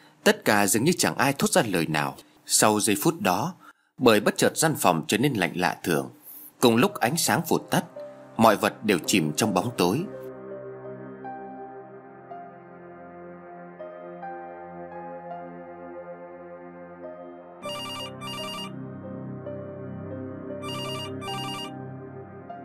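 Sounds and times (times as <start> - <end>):
speech: 0.2 - 10.2
music: 6.3 - 22.6
telephone ringing with electronic trills: 17.6 - 18.7, 20.6 - 21.8.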